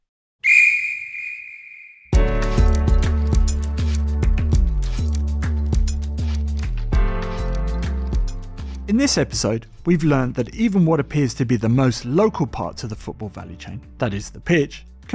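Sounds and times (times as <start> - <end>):
referee's whistle long shrill blast: 0.4 - 2.2
music with a steady beat: 2.2 - 8.7
speech: 9.0 - 15.1.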